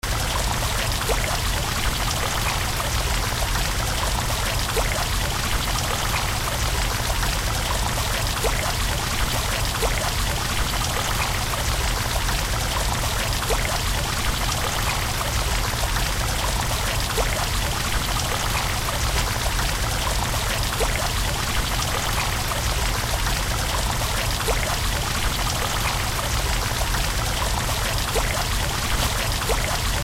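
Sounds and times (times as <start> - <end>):
mission fountain: 0.0 - 30.0.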